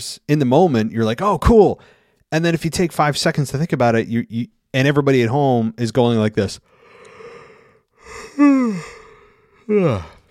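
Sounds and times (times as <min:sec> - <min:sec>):
speech: 0:00.0 - 0:06.7, 0:08.1 - 0:09.0, 0:09.7 - 0:10.2
person yawning exaggeratedly with groan: 0:06.8 - 0:10.2.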